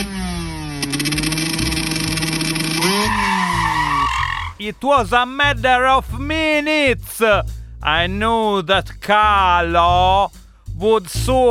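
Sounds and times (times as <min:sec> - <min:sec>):
small 125 motorcycle engine with Polini exhaust roaring: 0:00.0 - 0:04.6
speech: 0:04.6 - 0:11.5.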